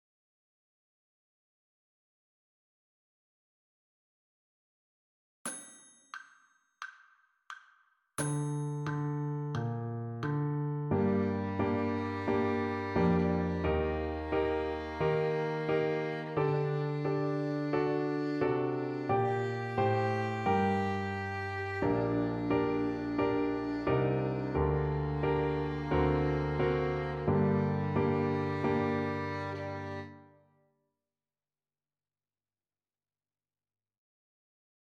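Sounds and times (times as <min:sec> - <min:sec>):
G minor arpeggio: 0:08.6 - 0:30.2.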